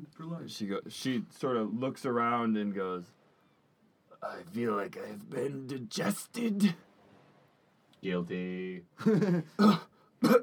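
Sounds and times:
speech: 0.2s - 3.2s, 4.2s - 6.9s, 8.0s - 10.4s
person faking a hacking cough: 9.6s - 10.4s.

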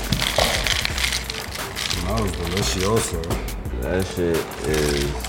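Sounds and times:
apple crunch cereal pouring into a bowl: 0.1s - 3.1s, 4.7s - 5.2s
speech: 2.1s - 5.2s.

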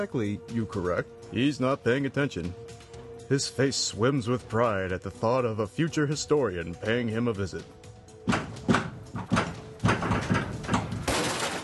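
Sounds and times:
speech: 0.0s - 8.4s
front door of a house being kicked in during an ICE raid: 8.3s - 11.6s.

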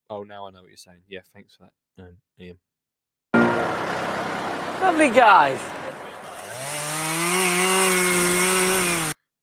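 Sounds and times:
speech: 0.4s - 2.7s, 3.4s - 6.1s
chainsaw cutting wood in chainsaw joinery: 6.2s - 9.2s.

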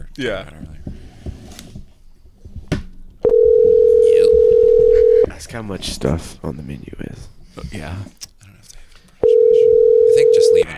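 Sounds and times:
faint room noise: 0.0s - 10.7s
speech: 0.2s - 0.8s, 5.4s - 8.3s
phone line pickup clicks: 3.2s - 5.4s, 9.2s - 10.7s
phone dial tone: 3.2s - 6.0s, 9.0s - 10.7s.

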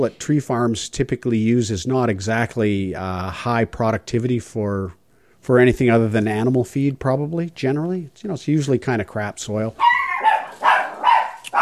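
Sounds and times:
speech: 0.0s - 9.9s
dogs barking: 9.8s - 11.6s.

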